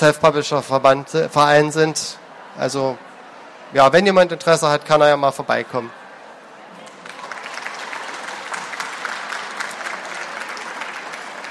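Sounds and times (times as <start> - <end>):
speech: 0.0 - 3.1, 3.7 - 6.0
audience applause: 6.8 - 11.5.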